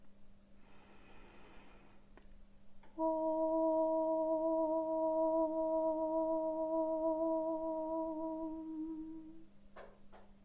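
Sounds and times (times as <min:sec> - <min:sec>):
high-pitched hummed meditation tone: 0:02.9 - 0:09.5.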